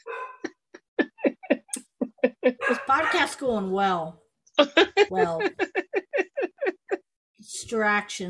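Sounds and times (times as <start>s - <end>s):
dog barking: 0.0s - 0.5s, 2.6s - 3.3s
dog giving a short whining yelp: 0.0s - 0.5s
laughter: 0.5s - 3.0s, 4.6s - 7.0s
speech: 2.2s - 5.8s, 7.7s - 8.2s.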